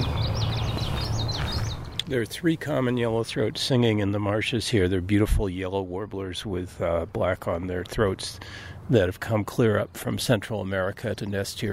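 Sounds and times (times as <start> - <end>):
Bullock's oriole singing: 0.0 - 2.1
speech: 2.1 - 11.7.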